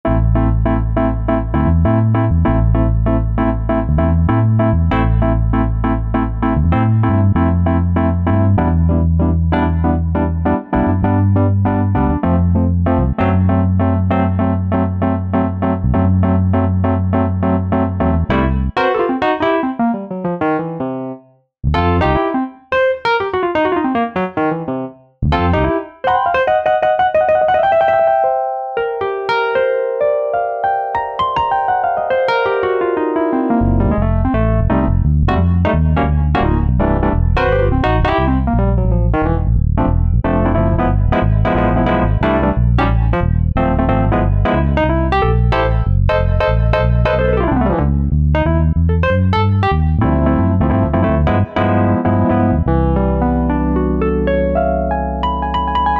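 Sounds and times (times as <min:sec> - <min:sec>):
synthesizer bass: 0:00.0 - 0:18.8, 0:21.6 - 0:22.3, 0:25.2 - 0:25.8, 0:33.5 - 0:55.9
Wurlitzer electric piano synthesizer: 0:00.0 - 0:55.9.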